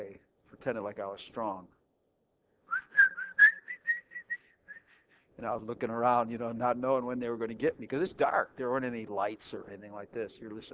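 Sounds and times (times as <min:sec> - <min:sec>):
speech: 0:00.6 - 0:01.8, 0:05.4 - 0:10.7
person whistling a short wavering tune: 0:02.7 - 0:05.0.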